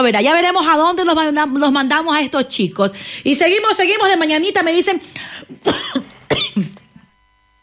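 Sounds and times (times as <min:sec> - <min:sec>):
speech: 0:00.0 - 0:05.8
loud harsh coughing fit: 0:05.4 - 0:07.1.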